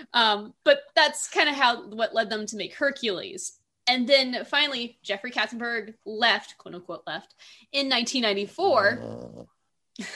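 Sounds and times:
speech: 0.0 - 10.1
dog snorting and grunting contentedly: 8.4 - 9.5.

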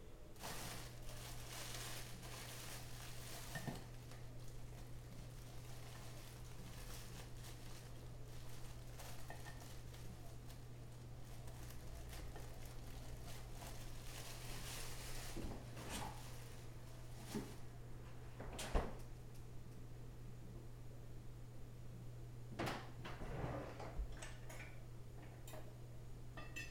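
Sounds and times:
low steady electrical hum: 0.0 - 26.6
bread rustling as it goes into a toaster: 0.4 - 17.7
drawer sliding open and shut: 23.0 - 24.1
light metallic clink of cutlery being picked up: 26.4 - 26.6.

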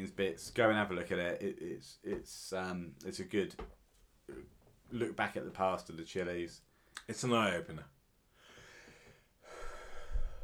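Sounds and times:
speech: 0.0 - 8.0
long deep breath: 8.4 - 10.4.

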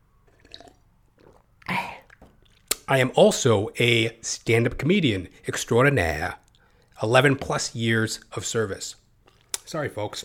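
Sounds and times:
person sipping water during a water break: 0.2 - 2.9, 6.4 - 7.0, 9.2 - 9.6
slurp and swallow: 0.3 - 2.9
speech: 2.9 - 6.4, 7.0 - 9.0, 9.7 - 10.2.

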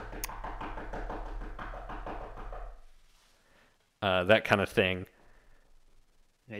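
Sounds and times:
frantic knocking on a hard surface imitating pounding at a door: 0.0 - 2.9
speech: 4.0 - 5.2.

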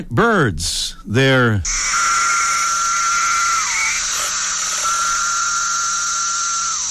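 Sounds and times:
speech: 0.0 - 2.2
seventeen-year periodical cicadas singing in a chorus: 1.7 - 6.8.

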